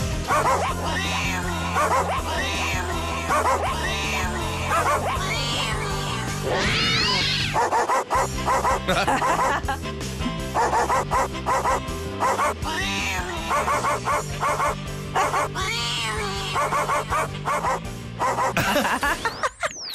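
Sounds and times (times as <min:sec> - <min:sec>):
steady backing track music: 0:00.0 - 0:19.9
dogs barking and yipping a melody: 0:00.3 - 0:05.9, 0:07.5 - 0:09.7, 0:10.5 - 0:12.8, 0:13.5 - 0:15.6, 0:16.4 - 0:18.7
laughter: 0:08.7 - 0:09.8, 0:18.5 - 0:19.8.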